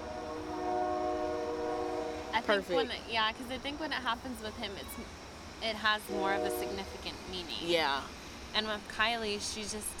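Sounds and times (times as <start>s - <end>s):
train horn: 0.0s - 2.7s, 6.1s - 7.0s
train rolling past with rail rumble: 0.0s - 9.9s
speech: 2.3s - 9.9s.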